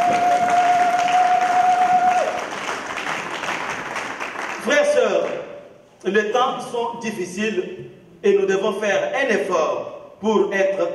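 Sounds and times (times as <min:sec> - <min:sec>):
congregation applauding: 0:00.0 - 0:05.5
speech: 0:06.0 - 0:10.9.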